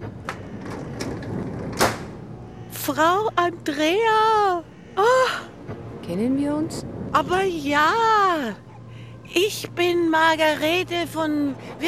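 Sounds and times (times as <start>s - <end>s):
door opening: 0.0s - 2.2s
constant rushing background: 0.0s - 11.8s
speech: 2.9s - 5.5s, 6.1s - 8.7s, 9.3s - 11.8s.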